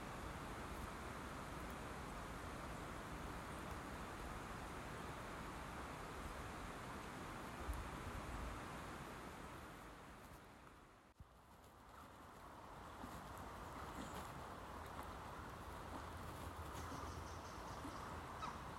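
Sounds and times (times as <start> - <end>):
leaves rustling in a light winter breeze: 0.0 - 18.7
birds tweeting in tree branches: 16.7 - 18.7.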